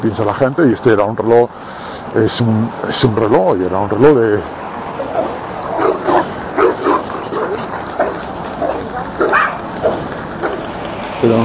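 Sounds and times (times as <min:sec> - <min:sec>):
speech: 0:00.0 - 0:04.6, 0:11.2 - 0:11.4
dogs barking in short yappy bursts: 0:05.0 - 0:10.8.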